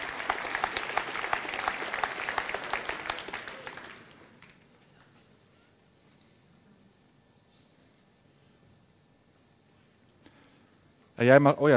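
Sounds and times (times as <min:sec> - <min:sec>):
audience applause: 0:00.0 - 0:04.6
speech: 0:11.2 - 0:11.7.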